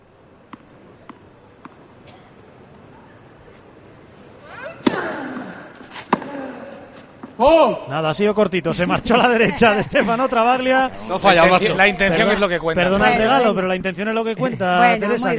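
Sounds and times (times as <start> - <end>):
tennis crowd noise: 0.0 - 15.3
tennis ball bouncing on court: 0.5 - 1.9, 4.4 - 7.4
tennis racket strikes: 4.4 - 7.4
speech: 7.4 - 15.3.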